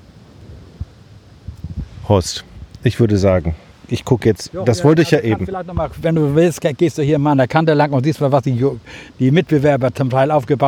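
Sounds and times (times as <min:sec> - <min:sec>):
wind rushing on the coast in hot sunny weather: 0:00.0 - 0:06.6
low rumbling wind gusts buffeting the microphone: 0:00.0 - 0:10.6
speech: 0:02.1 - 0:10.6.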